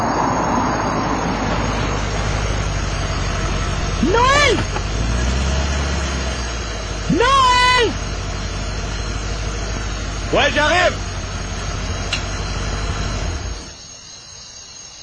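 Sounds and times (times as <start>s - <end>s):
car arriving and engine idling: 0.2s - 13.8s
person calling out: 3.9s - 4.7s, 7.1s - 8.0s
speech: 10.3s - 11.0s.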